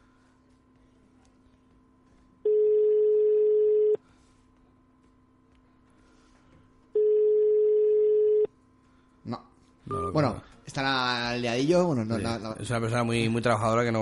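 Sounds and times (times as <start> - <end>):
telephone ringback tone: 2.5 - 4.0, 7.0 - 8.5
speech: 10.2 - 13.9.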